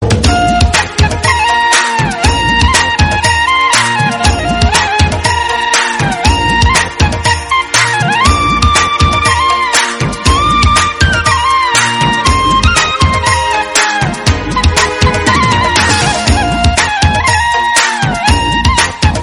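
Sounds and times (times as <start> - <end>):
flute music: 0.0 - 19.2.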